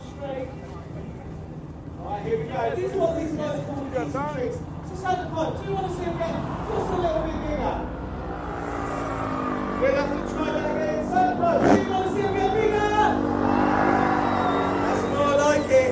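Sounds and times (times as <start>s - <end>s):
crowd noise at an outdoor track: 0.0s - 15.9s
speech: 2.2s - 7.9s, 9.8s - 10.7s
drift car skidding: 3.0s - 15.9s
drift car engines revving and whining at an outdoor track: 5.8s - 15.9s.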